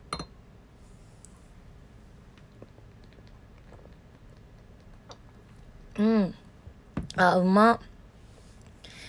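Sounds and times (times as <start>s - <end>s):
beer bottle clinking in a toast: 0.1s - 0.3s
speech: 7.2s - 7.9s.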